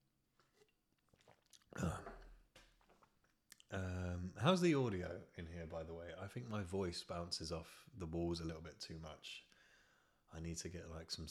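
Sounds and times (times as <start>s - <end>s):
slurping sip of coffee: 0.4s - 2.2s
speech: 3.7s - 9.5s, 10.3s - 11.2s.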